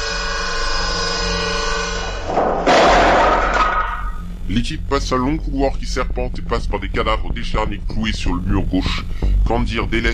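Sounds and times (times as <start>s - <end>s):
low droning music bed: 0.0s - 10.1s
splintering crash of a bolted wooden door struck by a hatchet: 2.2s - 4.2s
speech: 4.5s - 10.1s.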